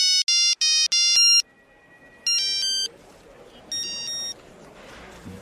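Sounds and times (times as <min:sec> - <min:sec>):
new mobile phone ringtone playing a rap song: 0:00.1 - 0:01.6, 0:02.2 - 0:02.9
rough murmur: 0:01.2 - 0:05.3.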